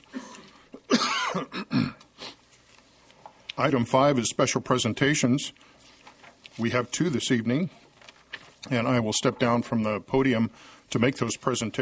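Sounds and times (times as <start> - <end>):
person coughing with a nagging cough and tickle in the throat: 0.1 - 2.1
speech: 1.4 - 1.6, 3.6 - 5.8, 6.6 - 7.8, 8.6 - 11.7.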